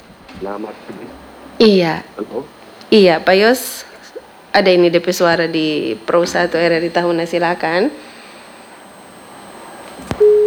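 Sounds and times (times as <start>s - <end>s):
speech: 0.4s - 3.9s, 4.5s - 8.1s
steady telephone tone after a call drops because of a network fault: 5.5s - 10.4s
telephone line click after a dropped phone-in call: 10.0s - 10.4s.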